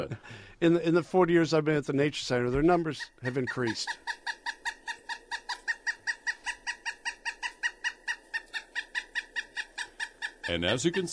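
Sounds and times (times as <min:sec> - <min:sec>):
speech: 0:00.0 - 0:04.3, 0:10.5 - 0:11.1
woodpecker calling: 0:02.4 - 0:11.1.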